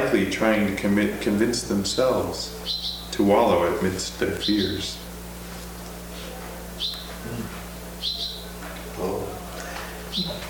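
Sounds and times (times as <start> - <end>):
steady low hum: 0.0 - 10.4
speech: 0.1 - 5.1
bird chirping: 2.5 - 3.2, 4.3 - 5.1, 6.8 - 7.2, 8.0 - 8.6.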